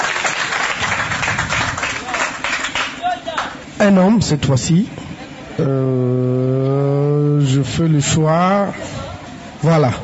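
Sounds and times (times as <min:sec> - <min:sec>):
audience applauding: 0:00.0 - 0:03.6
speech: 0:03.8 - 0:05.0, 0:05.6 - 0:10.0.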